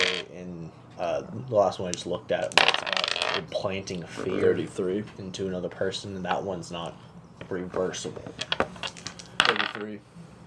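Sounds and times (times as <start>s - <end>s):
dice clattering across a hard tabletop: 0.0s - 0.3s, 1.9s - 3.6s, 8.1s - 10.0s
speech: 1.0s - 8.6s, 9.5s - 10.3s.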